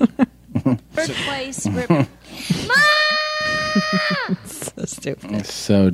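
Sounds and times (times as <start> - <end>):
laughter: 0.0 - 4.7
speech: 1.0 - 2.9, 4.9 - 5.9
children screaming in a screaming contest: 2.7 - 4.5.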